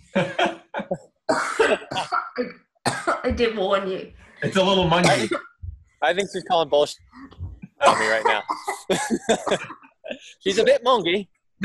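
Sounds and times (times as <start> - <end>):
laughter: 0.0 - 1.0, 4.4 - 5.4, 6.0 - 7.0, 7.6 - 11.6
woman coughing: 1.3 - 3.5, 4.4 - 5.4, 7.8 - 9.8
speech: 3.4 - 7.0, 7.8 - 11.6.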